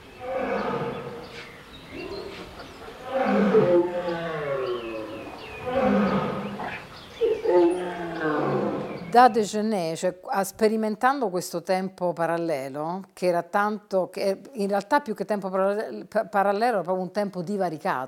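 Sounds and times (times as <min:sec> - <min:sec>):
caged lions and tigers roaring and growling at a zoo, played from video: 0:00.0 - 0:09.2
speech: 0:09.2 - 0:18.0.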